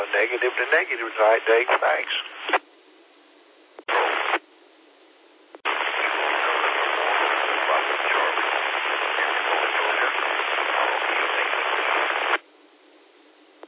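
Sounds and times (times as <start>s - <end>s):
faint voice of a weak station checking in over the radio: 0.0s - 2.4s, 5.7s - 12.4s
band-limited radio static hissing: 0.0s - 2.8s, 3.8s - 4.5s, 5.5s - 12.4s
speech: 0.1s - 2.6s.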